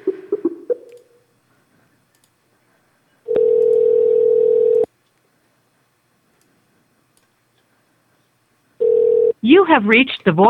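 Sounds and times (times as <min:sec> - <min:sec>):
telephone dialing clicks: 0:03.3 - 0:04.9
telephone ringback tone: 0:03.3 - 0:04.9, 0:08.8 - 0:09.4
speech: 0:09.6 - 0:10.4.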